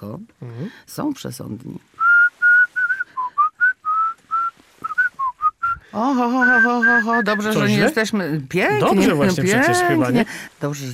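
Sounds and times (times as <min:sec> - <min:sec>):
speech: 0:00.0 - 0:02.0, 0:06.0 - 0:10.9
person whistling a tune: 0:02.0 - 0:05.8, 0:06.4 - 0:07.6.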